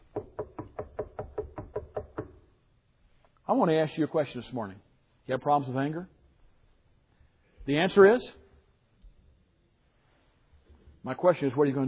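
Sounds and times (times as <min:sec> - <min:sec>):
sharp knocks on a wooden surface: 0:00.0 - 0:02.4
speech: 0:03.5 - 0:06.2, 0:07.7 - 0:08.4, 0:11.0 - 0:11.8.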